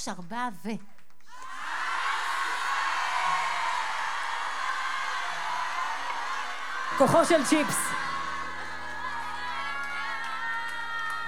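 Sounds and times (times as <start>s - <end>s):
speech: 0.0s - 1.0s, 7.0s - 8.0s
large audience shouting a prayer in unison: 1.3s - 11.2s.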